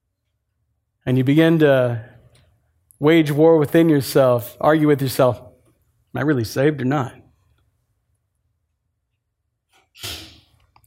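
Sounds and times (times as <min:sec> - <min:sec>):
speech: 0:01.1 - 0:02.1, 0:03.0 - 0:05.5, 0:06.1 - 0:07.2, 0:10.0 - 0:10.2
sneeze: 0:09.9 - 0:10.6.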